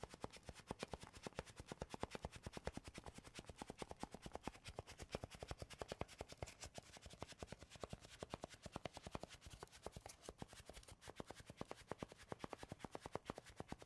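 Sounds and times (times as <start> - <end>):
rapid tapping and scratching on wood, cork or cardboard: 0.0 - 13.8.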